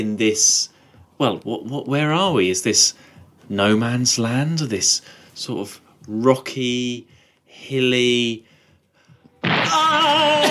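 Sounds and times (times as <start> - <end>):
speech: 0.0 - 8.5
loud explosion: 9.4 - 10.2.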